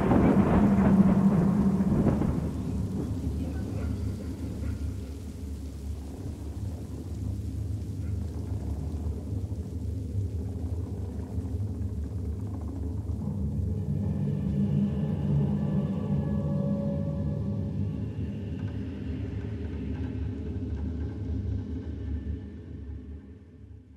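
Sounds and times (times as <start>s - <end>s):
heavy low rumble of thunder: 0.0s - 21.7s
rain falling steadily outside during a storm: 0.0s - 22.4s.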